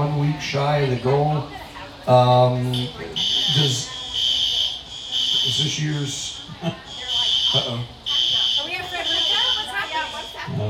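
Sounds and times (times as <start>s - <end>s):
speech: 0.4s - 3.9s, 5.4s - 6.9s, 7.5s - 8.0s
shrill high-pitched fire alarm buzzing: 3.2s - 10.6s.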